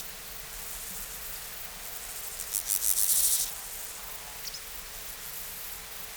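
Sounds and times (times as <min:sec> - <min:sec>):
background hiss: 0:00.0 - 0:06.0
steppe grasshopper Chorthippus dorsatus rasping song: 0:00.2 - 0:04.4.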